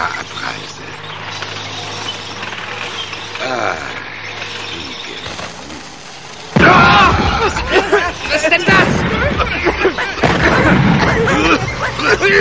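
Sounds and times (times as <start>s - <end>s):
rumbling noise: 0.0s - 12.4s
voices: 0.0s - 12.4s
grenade exploding: 6.5s - 8.0s, 8.6s - 11.7s
laughter: 6.6s - 12.4s
speech: 8.4s - 10.8s, 11.8s - 12.4s.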